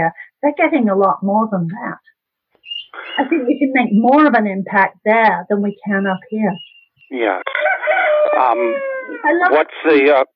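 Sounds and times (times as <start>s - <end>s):
speech: 0.0s - 2.1s, 2.9s - 7.5s, 8.3s - 10.3s
rooster crowing: 7.4s - 9.3s.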